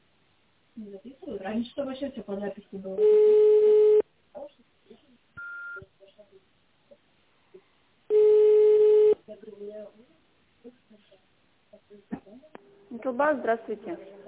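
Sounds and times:
speech: 0.8s - 4.7s, 9.3s - 14.2s
ringback tones on a telephone line while a call is placed: 3.0s - 4.0s, 8.1s - 9.2s.

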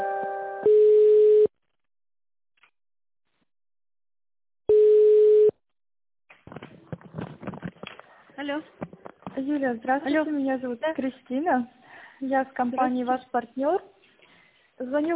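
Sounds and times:
long mid-pitched telephone line beeps during a call transfer: 0.0s - 1.5s, 4.7s - 5.5s
speech: 8.4s - 8.8s, 9.4s - 14.0s, 14.8s - 15.1s.

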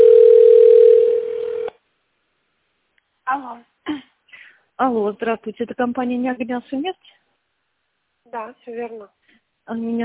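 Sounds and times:
telephone ringing tone while waiting for a connection: 0.0s - 1.7s
speech: 4.8s - 7.2s, 8.3s - 10.0s.

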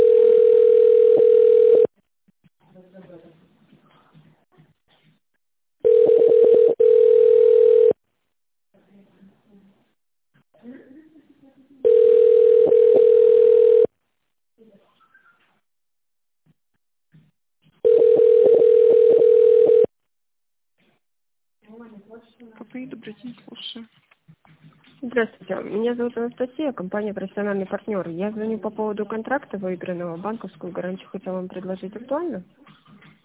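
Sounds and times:
telephone ringback tone while a call to a company connects: 0.0s - 1.9s, 5.8s - 8.0s, 11.8s - 13.9s, 17.8s - 19.9s
speech: 25.9s - 32.7s.

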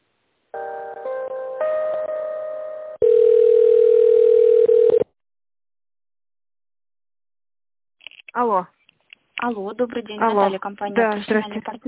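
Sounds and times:
telephone tones while a call is transferred: 3.0s - 5.1s
speech: 8.4s - 8.8s, 9.4s - 11.8s.

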